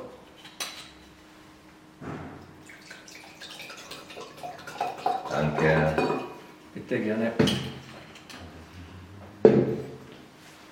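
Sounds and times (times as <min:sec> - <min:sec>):
still water pouring into a glass: 0:02.6 - 0:05.4
sharp clink of glass: 0:04.8 - 0:06.4
speech: 0:06.9 - 0:07.8.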